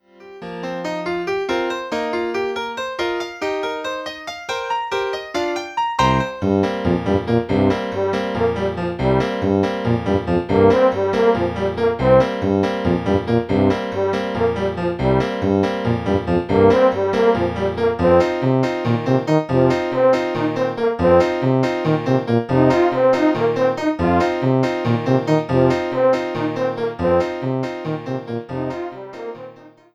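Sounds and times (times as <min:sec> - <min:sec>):
piano: 0:00.0 - 0:29.9
tuba: 0:06.0 - 0:29.7
horn: 0:06.0 - 0:29.9.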